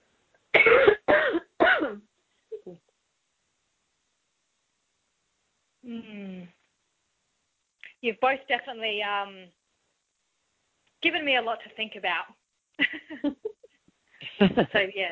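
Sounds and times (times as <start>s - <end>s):
person coughing harshly: 0.6s - 2.0s
speech: 8.0s - 9.6s, 11.0s - 13.5s, 14.4s - 15.1s.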